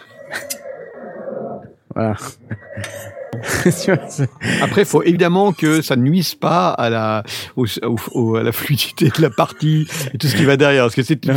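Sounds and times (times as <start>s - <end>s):
horse whinnying: 0.0s - 1.8s, 2.4s - 4.4s
speech: 2.0s - 11.3s
laughter: 2.2s - 5.8s, 8.1s - 10.7s.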